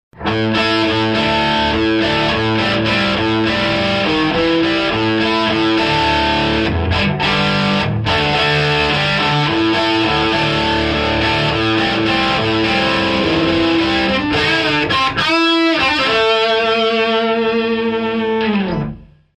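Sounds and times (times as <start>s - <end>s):
guitar amplifier: 0.1s - 19.3s.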